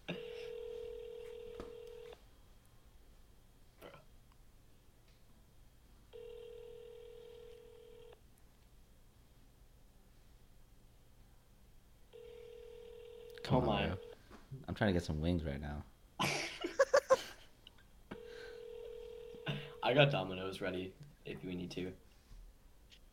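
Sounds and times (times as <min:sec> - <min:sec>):
outgoing phone call electronic ring tone: 0:00.1 - 0:02.2, 0:06.1 - 0:08.2, 0:12.1 - 0:14.2, 0:18.1 - 0:20.2
speech: 0:14.8 - 0:15.9, 0:19.9 - 0:22.0.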